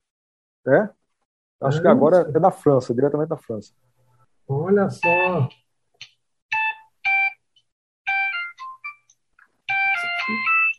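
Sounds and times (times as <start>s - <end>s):
speech: 0.6s - 1.0s, 1.6s - 3.9s, 4.5s - 5.6s, 10.3s - 10.5s
Nokia mobile phone ringtone melody: 5.0s - 5.5s, 6.5s - 7.4s, 8.1s - 9.1s, 9.7s - 10.7s.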